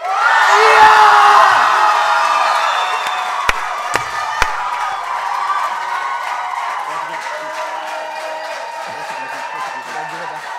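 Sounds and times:
large live festival audience cheering and whooping for a poetry competition entrant: 0.0 - 10.5
sharp claps or knocks: 3.5 - 4.9.

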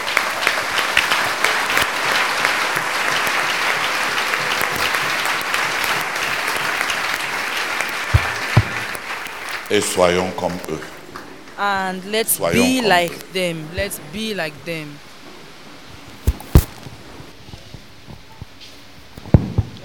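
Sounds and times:
audience applauding: 0.0 - 13.4
speech: 9.7 - 11.0, 11.6 - 15.1.

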